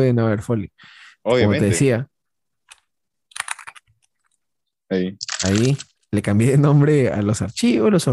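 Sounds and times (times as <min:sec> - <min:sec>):
speech: 0:00.0 - 0:02.1, 0:04.9 - 0:08.1
typing on a computer keyboard: 0:02.7 - 0:04.0, 0:05.2 - 0:05.9.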